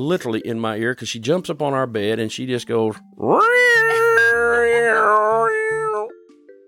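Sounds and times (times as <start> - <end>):
speech: 0.0 - 4.0
person imitating a kitten's meow: 3.2 - 6.1.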